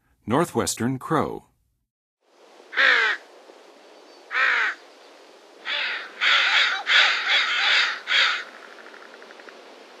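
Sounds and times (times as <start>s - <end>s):
Northwestern crow calling in the western USA: 2.7s - 3.2s, 4.3s - 4.8s, 5.6s - 9.2s.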